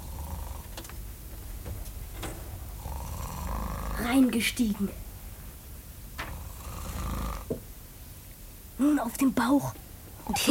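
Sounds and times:
man snoring in bed: 0:00.0 - 0:00.8, 0:02.8 - 0:04.1, 0:06.2 - 0:07.6
speech: 0:04.0 - 0:05.0, 0:09.2 - 0:10.4.

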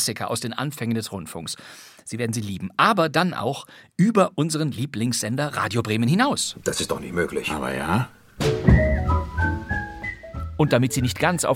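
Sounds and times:
speech: 0:00.0 - 0:08.8, 0:10.6 - 0:11.5
cheerful whistled closing melody: 0:08.4 - 0:11.5
soft rhythmic accompaniment: 0:08.4 - 0:11.5.

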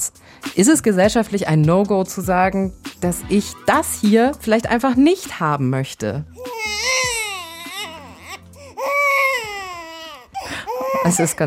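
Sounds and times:
speech: 0:00.5 - 0:06.4, 0:11.0 - 0:11.4
baby crying: 0:06.4 - 0:11.4.

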